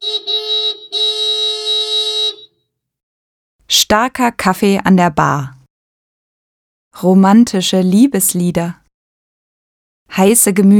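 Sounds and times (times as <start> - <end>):
car horn honking: 0.0 - 2.6
speech: 3.8 - 5.6, 7.0 - 8.8, 10.1 - 10.7.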